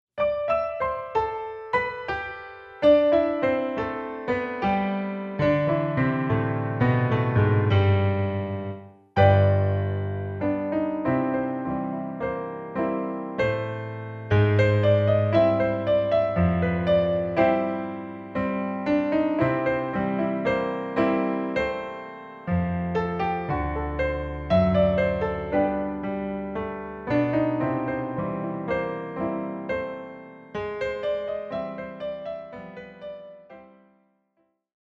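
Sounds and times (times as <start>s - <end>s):
ragtime piano piece: 0.2s - 34.2s.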